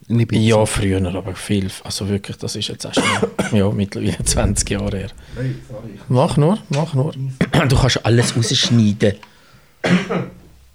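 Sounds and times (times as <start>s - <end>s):
speech: 0.1s - 10.3s
cough: 2.9s - 3.7s, 7.5s - 9.0s, 9.8s - 10.5s.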